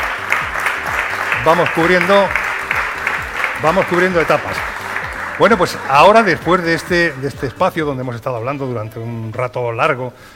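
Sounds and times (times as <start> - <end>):
audience applause for a guest: 0.0 - 7.9
speech: 1.4 - 2.4, 3.6 - 4.7, 5.4 - 10.3.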